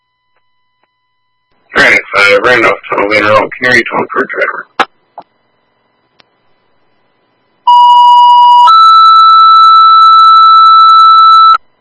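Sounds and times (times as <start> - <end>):
speech: 2.3 - 4.7
two-tone fire dispatch pager alert for EMS ambulance call in Randolph: 7.7 - 11.6.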